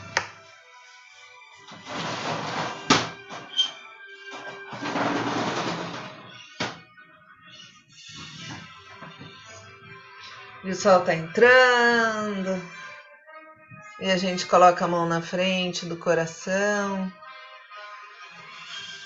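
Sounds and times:
window scraping and rattling as it slides open: 0:01.7 - 0:06.8
speech: 0:10.7 - 0:12.8, 0:14.0 - 0:17.2.

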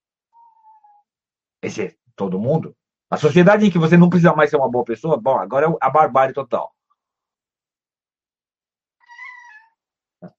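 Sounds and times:
speech: 0:01.6 - 0:06.8
cat meowing: 0:09.0 - 0:09.8.

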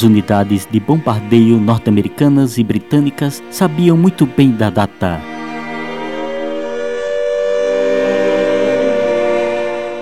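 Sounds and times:
speech: 0:00.0 - 0:05.5
air raid siren wailing: 0:05.3 - 0:09.9.

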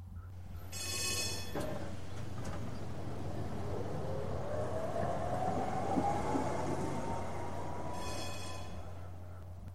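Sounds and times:
tram rumbling and whining: 0:00.0 - 0:09.7
bright metallic tram bell ringing: 0:00.6 - 0:02.0, 0:07.5 - 0:09.3.

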